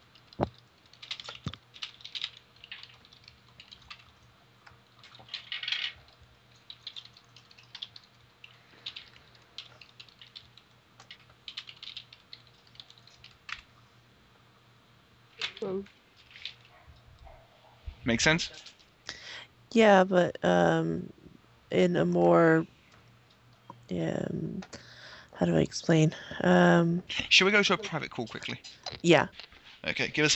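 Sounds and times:
typing on a computer keyboard during an online tabletop role-playing game session: 0:00.0 - 0:13.7
steady low hum: 0:00.0 - 0:30.3
speech: 0:18.0 - 0:18.7, 0:19.7 - 0:22.7, 0:23.9 - 0:24.7, 0:25.4 - 0:30.3.

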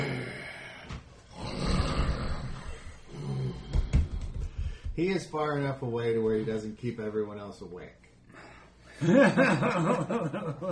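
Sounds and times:
sleeping man snoring: 0:00.0 - 0:03.7
speech: 0:05.0 - 0:08.0, 0:09.0 - 0:10.7
laughter: 0:09.0 - 0:10.7.

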